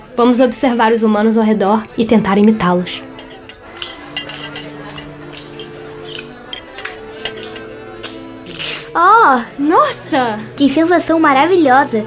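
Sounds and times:
speech: 0.2s - 3.2s, 9.3s - 12.0s
metal cutlery clinking and scraping on porcelain dishes as people eat: 2.4s - 9.0s.

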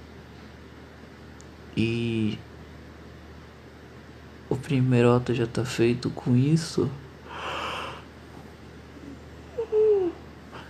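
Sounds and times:
speech: 1.8s - 2.5s, 4.6s - 7.0s
person yawning: 9.5s - 10.6s.

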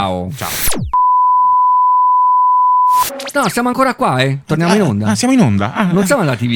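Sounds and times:
speech: 0.0s - 1.0s, 3.1s - 6.5s
falling sweep: 0.3s - 1.0s, 2.9s - 3.6s
short burst of noise: 0.3s - 1.0s, 2.8s - 3.6s
steady high electronic tone: 0.3s - 3.9s.

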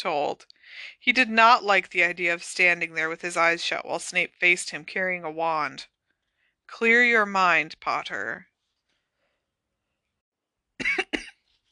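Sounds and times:
speech: 0.0s - 5.9s, 6.7s - 8.5s
person coughing harshly: 10.8s - 11.4s.

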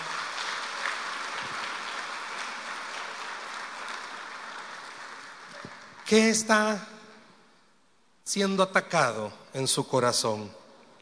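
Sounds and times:
audience applauding praising the Lord: 0.0s - 6.8s
speech: 6.1s - 6.9s, 8.3s - 10.6s.

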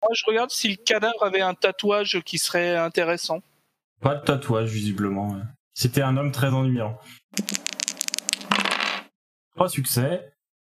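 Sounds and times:
speech: 0.1s - 7.8s, 9.6s - 10.3s
dice tumbling onto a hard surface: 7.4s - 9.1s.

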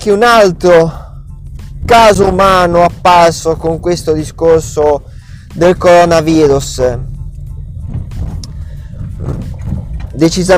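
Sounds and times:
speech: 0.0s - 1.0s, 1.9s - 7.1s, 10.2s - 10.5s
car engine rumbling inside the moving vehicle: 0.0s - 10.5s
road noise: 0.0s - 10.5s.

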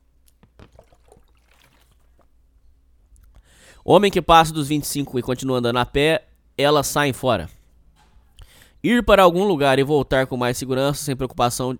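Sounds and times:
person drinking water: 0.2s - 2.4s
speech: 3.7s - 7.6s, 8.8s - 11.7s.

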